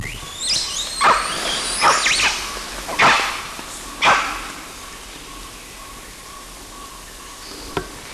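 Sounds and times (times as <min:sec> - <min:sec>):
adult male animal quist calls outdoors: 0:01.0 - 0:04.6.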